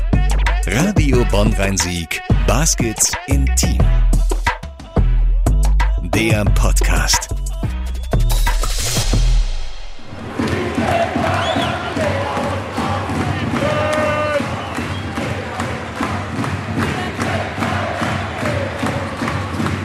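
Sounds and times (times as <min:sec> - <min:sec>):
thumping beats: 0:00.1 - 0:19.8
speech: 0:00.7 - 0:04.1, 0:06.2 - 0:07.3
crowd cheering at a basketball game in an arena during an overtime victory: 0:10.1 - 0:19.8.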